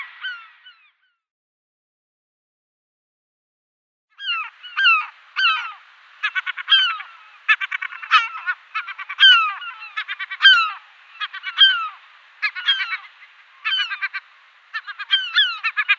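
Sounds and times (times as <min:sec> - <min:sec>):
European herring gull calls: 0:00.0 - 0:01.1, 0:04.2 - 0:15.9.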